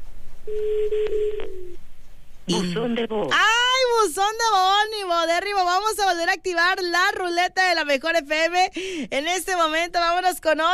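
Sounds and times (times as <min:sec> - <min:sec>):
ringback tone of an outgoing telephone call: 0:00.5 - 0:01.7
speech: 0:02.5 - 0:10.7.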